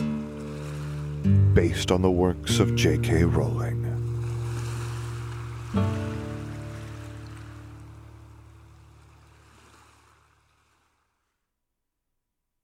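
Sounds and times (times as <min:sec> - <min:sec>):
waves washing onto a pebble beach: 0:00.0 - 0:01.3, 0:04.0 - 0:11.3
speech: 0:01.2 - 0:03.8.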